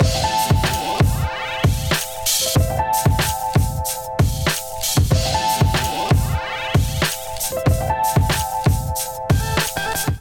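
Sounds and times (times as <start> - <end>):
melodic drum kit playing: 0.0 - 10.1.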